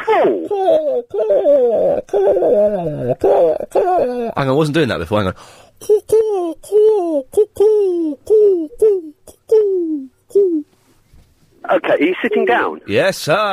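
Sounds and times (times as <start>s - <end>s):
person imitating pigeon cooing: 0.0s - 4.4s, 5.8s - 10.7s
speech: 0.2s - 9.1s, 11.6s - 13.5s.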